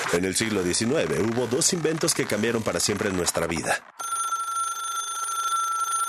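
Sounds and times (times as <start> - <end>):
speech: 0.2 - 4.0
telephone bell ringing: 4.0 - 6.0.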